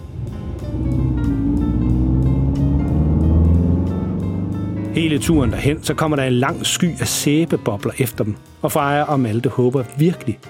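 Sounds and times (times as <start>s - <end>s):
car engine pulling away and accelerating: 0.0s - 8.2s
speech: 5.0s - 10.4s.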